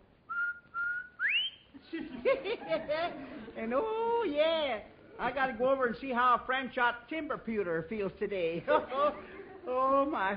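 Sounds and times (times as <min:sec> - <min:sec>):
person whistling a short tune of three clear notes: 0:00.3 - 0:01.7
laughter: 0:01.8 - 0:03.7, 0:08.6 - 0:10.0
speech: 0:02.4 - 0:10.3.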